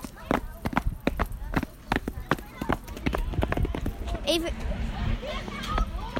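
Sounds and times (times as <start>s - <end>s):
firm evenly spaced footsteps: 0.0s - 4.2s
faint murmur of voices: 0.0s - 6.1s
speech: 4.3s - 4.7s.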